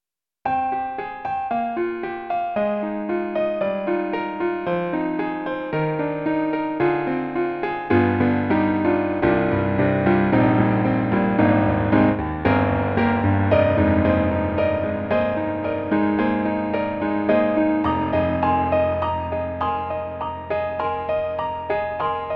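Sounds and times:
synthesizer FX piano: 0.5 - 22.3.

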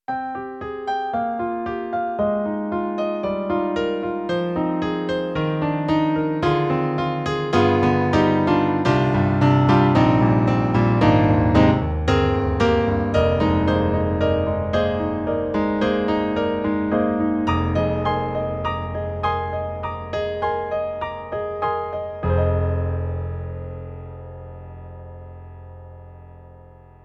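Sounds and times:
Roland SonicCell warm piano: 0.1 - 27.0.

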